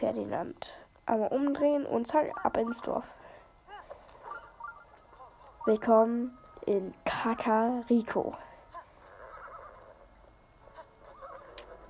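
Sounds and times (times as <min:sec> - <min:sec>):
speech: 0:00.0 - 0:03.2, 0:05.6 - 0:08.5
video-game horse hooves clip-clopping: 0:03.7 - 0:06.6, 0:08.6 - 0:11.8
video-game horse whinnying: 0:09.0 - 0:10.0, 0:11.0 - 0:11.8.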